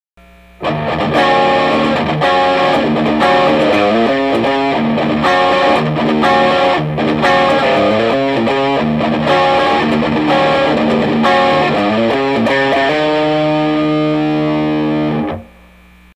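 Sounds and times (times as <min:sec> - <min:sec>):
Flying V electric guitar on rear pickup through overdrive pedal: 0:00.2 - 0:16.1.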